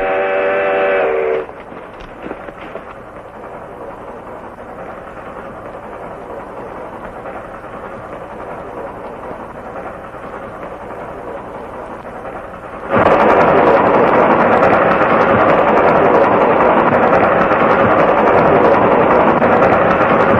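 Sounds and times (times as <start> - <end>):
train whistle blast: 0.0 - 1.6
moving train rumbling: 0.0 - 20.3.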